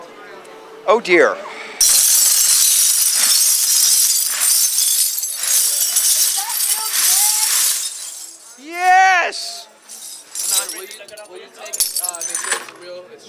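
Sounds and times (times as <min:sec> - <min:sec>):
speech: 0:00.9 - 0:02.1
glass shattering: 0:01.8 - 0:08.6, 0:09.5 - 0:12.8.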